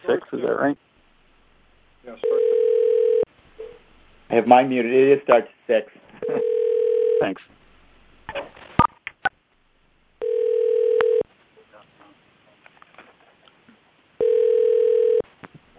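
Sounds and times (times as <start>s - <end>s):
speech: 0.5s - 0.9s, 4.3s - 6.5s, 7.2s - 7.6s
phone line ringing tone on a conference call: 2.2s - 3.3s, 6.2s - 7.4s, 10.2s - 11.2s, 14.2s - 15.3s.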